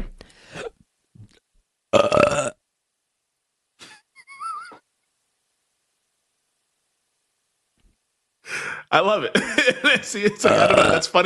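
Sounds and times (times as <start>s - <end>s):
loud burp: 1.9s - 2.6s, 10.4s - 11.1s
speech: 8.9s - 11.2s.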